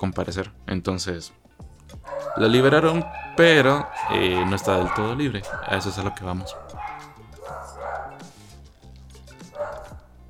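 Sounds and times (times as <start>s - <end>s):
speech: 0.0s - 1.4s, 2.0s - 6.8s
dogs barking with sharp yips: 1.9s - 8.6s, 9.4s - 10.2s.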